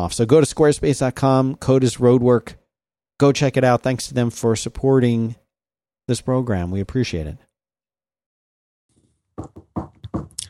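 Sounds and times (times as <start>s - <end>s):
speech: 0.0s - 2.6s, 3.2s - 5.4s, 6.1s - 7.5s, 9.4s - 9.6s
finger tapping on a hard surface: 9.4s - 10.4s.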